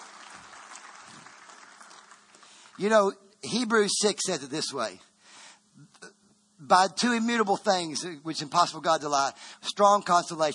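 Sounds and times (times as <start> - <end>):
church congregation clapping: 0.0 - 3.0
speech: 2.8 - 5.1, 6.6 - 10.5.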